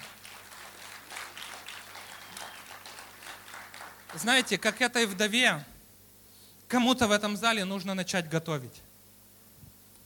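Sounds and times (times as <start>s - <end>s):
audience clapping at a religious service: 0.0s - 5.3s
speech: 4.1s - 5.7s, 6.7s - 8.9s.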